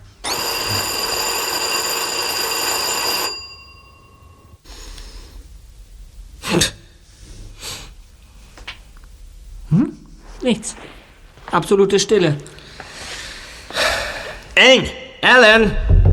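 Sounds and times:
electric doorbell ringing: 0.2 - 4.6
soft breathing sounds: 4.6 - 5.6, 7.0 - 8.6, 12.4 - 14.6
speech: 10.5 - 10.9, 11.5 - 12.6, 14.6 - 15.9.

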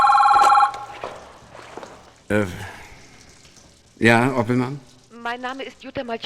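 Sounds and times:
telephone bell ringing: 0.0 - 1.8
faint shuffling: 0.4 - 3.8
speech: 2.3 - 2.7, 4.0 - 6.2.

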